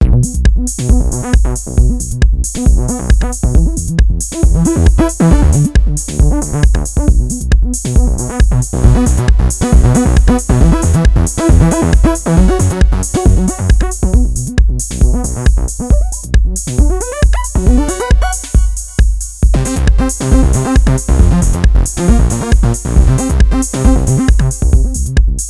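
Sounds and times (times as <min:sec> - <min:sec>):
Korg Radias-R bass machine: 0:00.0 - 0:25.4.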